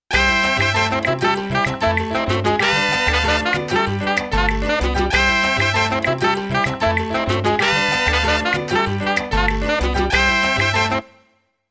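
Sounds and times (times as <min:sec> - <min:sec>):
salsa music from an XP-80 synthesizer patch demo: 0:00.1 - 0:11.2.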